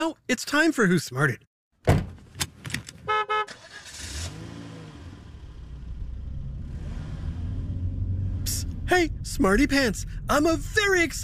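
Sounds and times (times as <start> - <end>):
speech: 0.3 - 2.0, 8.9 - 11.2
car engine rumbling while driving and accelerating: 2.0 - 11.2
car horn honking: 3.0 - 3.8.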